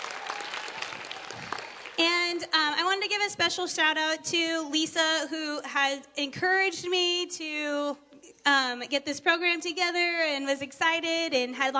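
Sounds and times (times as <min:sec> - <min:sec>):
audience applauding with many hands clapping: 0:00.0 - 0:02.0
speech: 0:02.0 - 0:11.7.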